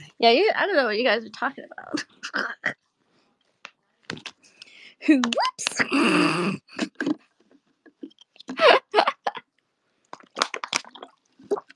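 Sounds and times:
speech: 0.2s - 2.8s, 5.0s - 7.2s
person drinking water with wet gulps: 5.8s - 8.6s, 10.1s - 11.7s.

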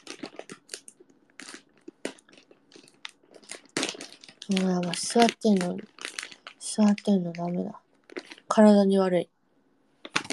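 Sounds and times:
person eating a crunchy potato snack: 0.0s - 7.0s, 10.0s - 10.3s
speech: 4.5s - 5.9s, 6.8s - 7.8s, 8.6s - 9.4s.

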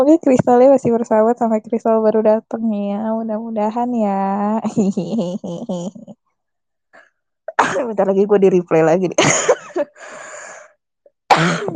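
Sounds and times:
speech: 0.0s - 6.2s, 7.6s - 10.3s
person with a persistent cough coughing raspily: 7.5s - 7.9s, 11.3s - 11.7s.

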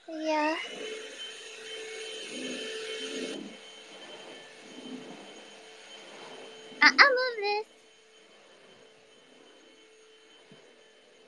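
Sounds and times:
vacuum cleaner running: 0.0s - 11.2s.

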